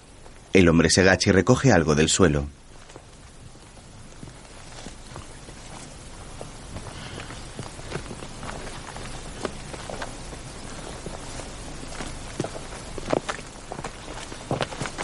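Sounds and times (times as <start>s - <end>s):
constant hiss: 0.0s - 15.0s
speech: 0.5s - 2.7s
two people's footsteps walking along a narrow forest path: 2.6s - 15.0s.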